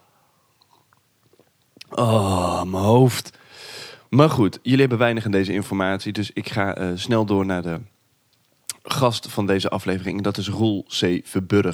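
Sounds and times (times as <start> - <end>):
soft mouth clicks while sipping water: 0.5 - 2.4, 8.3 - 8.9
person swallowing a sip of water: 0.6 - 2.7
speech: 1.9 - 3.4, 4.1 - 7.9, 9.0 - 11.7.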